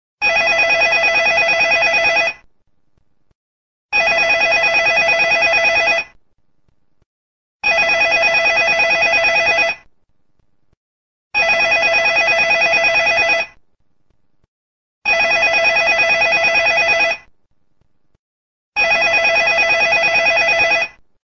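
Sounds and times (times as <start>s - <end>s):
phone ringing: 0.2s - 2.5s, 3.9s - 6.2s, 7.6s - 9.9s, 11.4s - 13.6s, 15.1s - 17.3s, 18.8s - 21.0s.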